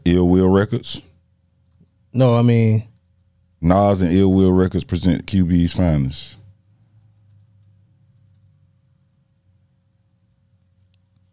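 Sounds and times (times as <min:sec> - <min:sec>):
low steady hum: 0:00.0 - 0:11.3
speech: 0:00.1 - 0:01.1, 0:02.1 - 0:02.9, 0:03.6 - 0:06.4
typing on a computer keyboard: 0:01.6 - 0:02.0, 0:06.9 - 0:08.6.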